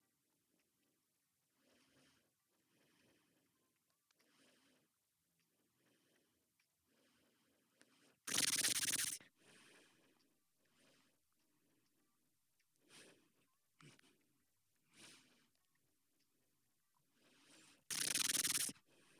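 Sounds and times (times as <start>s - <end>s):
beatboxing: 17.9s - 18.7s.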